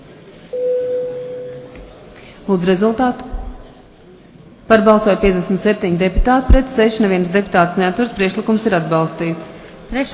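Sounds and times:
faint low hum: 0.0 - 2.4
parliament voting signal electronic tone: 0.6 - 1.9
speech: 2.5 - 3.3, 4.7 - 10.1.

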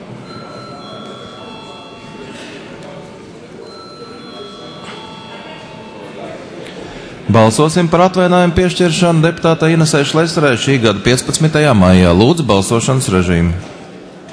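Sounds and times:
murmur of voices in a large hall: 0.0 - 14.3
parliament chamber electric bell ringing before a vote: 0.2 - 2.9, 3.6 - 6.6
speech: 7.3 - 13.8.

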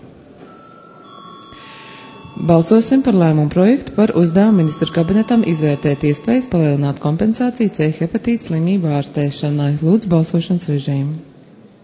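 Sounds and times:
electric bell ringing in a parliament chamber: 0.5 - 8.6
speech: 2.4 - 11.3.

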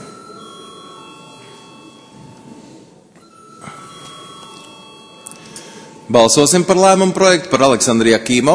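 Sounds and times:
electric bell ringing in the chamber of Latvia's parliament before a vote: 0.0 - 6.7
speech: 6.1 - 8.5.

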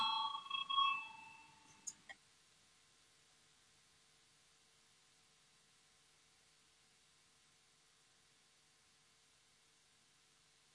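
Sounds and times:
voting signal bell ringing in a parliament: 0.0 - 1.9.

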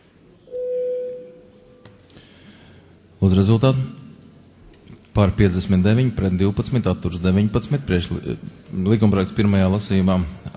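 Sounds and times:
electronic bell tone calling a parliamentary vote: 0.5 - 1.8
speech: 3.2 - 4.0, 5.2 - 10.5.

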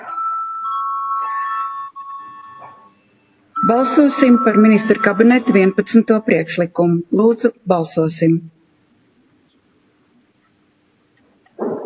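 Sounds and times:
electronic chime bell calling members to vote: 0.0 - 6.4
speech: 3.7 - 8.6.

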